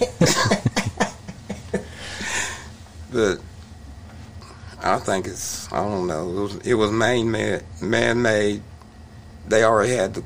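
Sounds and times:
harsh coughing: 0.0 - 1.2
speech: 3.2 - 3.4, 4.9 - 8.7, 9.5 - 10.2.

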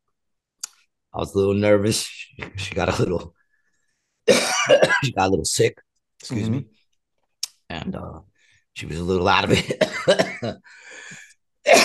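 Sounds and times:
speech: 1.2 - 3.4, 4.7 - 6.8, 7.8 - 11.8
person coughing: 4.3 - 5.2, 9.7 - 10.6, 11.7 - 11.8.

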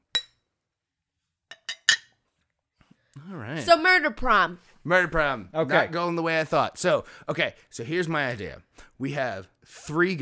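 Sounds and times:
beer glasses clinking in a toast: 0.1 - 0.4, 1.5 - 2.1
speech: 3.2 - 10.2.

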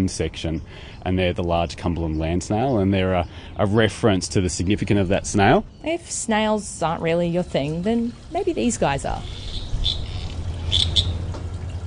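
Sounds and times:
speech: 0.0 - 10.0
low steady rumble: 6.8 - 11.8
frogs croaking at a pond: 8.1 - 11.3.

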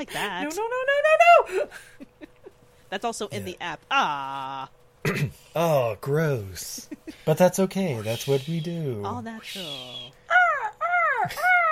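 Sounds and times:
speech: 0.0 - 2.0, 2.9 - 10.2, 11.2 - 11.6
bird calling whistly downward-bending cries: 8.0 - 10.8.

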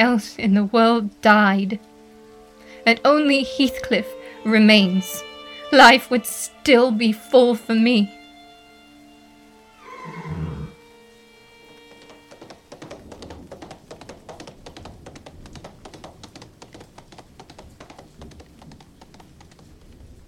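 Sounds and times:
speech: 0.0 - 1.9, 2.8 - 8.2
horse whinnying: 9.8 - 10.8
hoofbeats of galloping horse: 11.7 - 20.2.

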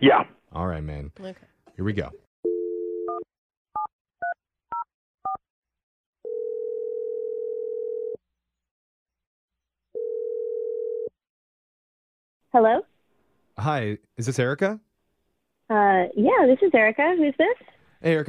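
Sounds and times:
speech: 0.0 - 2.3, 12.6 - 12.9, 13.6 - 14.9, 15.9 - 18.2
telephone ringing tones: 6.3 - 8.2, 10.0 - 11.1.

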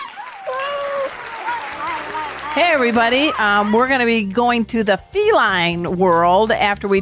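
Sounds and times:
whistles and cheers: 0.0 - 2.6
crowd applause: 0.0 - 4.0
speech: 2.6 - 7.0.

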